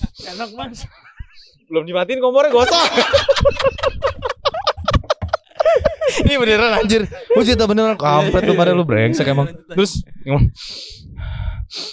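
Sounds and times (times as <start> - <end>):
speech: 0.2 - 1.0, 1.7 - 3.8, 6.2 - 11.1, 11.7 - 11.9
laughter: 2.5 - 9.6
voice imitating sharp breathless gasping: 10.6 - 11.9.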